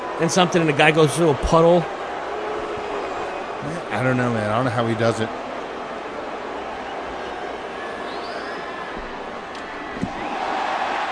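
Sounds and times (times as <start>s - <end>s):
large crowd roaring and cheering wildly: 0.0s - 11.0s
speech: 0.2s - 2.0s, 3.6s - 5.4s
thud: 9.9s - 10.3s.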